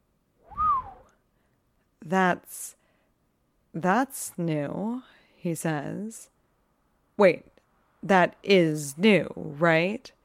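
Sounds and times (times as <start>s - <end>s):
low whistle from a man: 0.5s - 1.1s
speech: 2.0s - 2.8s, 3.7s - 6.3s, 7.2s - 10.2s.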